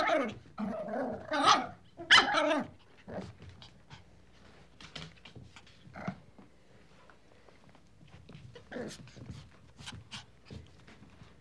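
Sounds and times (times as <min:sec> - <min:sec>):
playful puppy growling: 0:00.0 - 0:03.5, 0:05.8 - 0:06.3, 0:08.6 - 0:09.2
playful puppy barking: 0:01.4 - 0:02.7.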